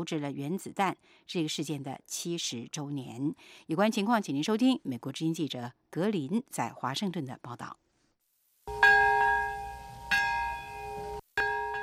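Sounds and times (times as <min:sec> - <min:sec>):
speech: 0:00.0 - 0:07.8
large memorial bell tolling in a peace park: 0:08.7 - 0:11.8.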